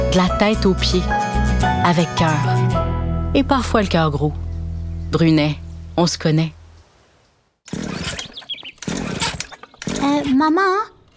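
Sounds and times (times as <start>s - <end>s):
speech: 0.1s - 1.2s, 1.9s - 2.8s, 3.3s - 4.5s, 5.1s - 6.6s, 10.3s - 10.9s
chainsaw revving: 7.7s - 11.1s.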